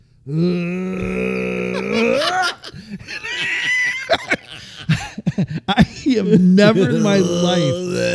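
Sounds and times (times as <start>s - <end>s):
speech: 0.2s - 1.1s, 6.2s - 8.1s
voice imitating dry heaving: 0.3s - 2.6s, 6.7s - 8.1s
breathy laughter: 1.6s - 5.7s.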